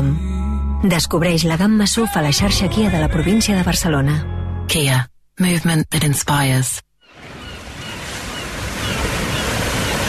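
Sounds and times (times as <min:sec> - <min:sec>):
speech: 0:00.8 - 0:06.9
sea waves: 0:07.1 - 0:10.0.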